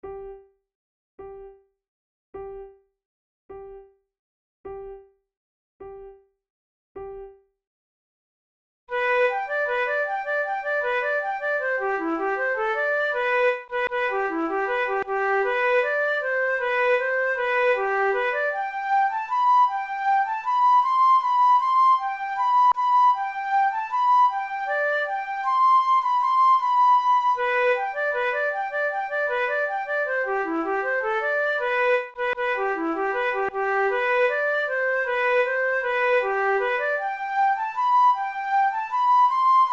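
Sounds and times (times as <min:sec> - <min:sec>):
flute: 0:08.9 - 0:39.7.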